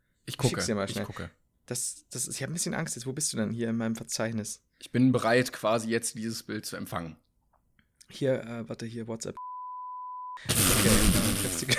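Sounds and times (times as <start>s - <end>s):
speech: 0.4s - 7.2s, 8.1s - 9.4s, 10.4s - 11.7s
censor beep over speech: 9.4s - 10.4s.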